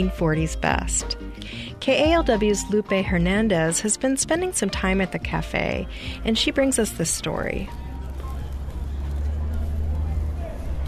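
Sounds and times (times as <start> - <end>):
speech: 0.0 - 7.8
low traffic rumble from cars on a city street: 0.0 - 10.8
indistinct voices murmuring on a city street outside a cafe: 7.4 - 10.8.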